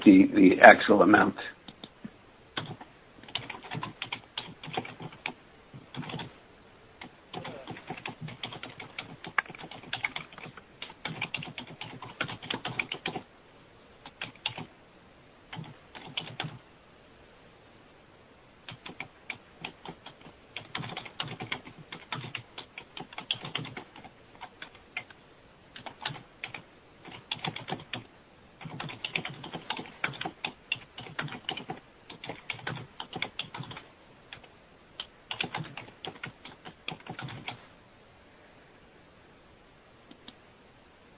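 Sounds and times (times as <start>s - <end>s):
speech: 0.0s - 1.6s
typing on a computer keyboard: 2.6s - 6.3s, 7.0s - 13.2s, 14.0s - 14.7s, 15.5s - 16.6s, 18.7s - 25.1s, 25.8s - 37.6s.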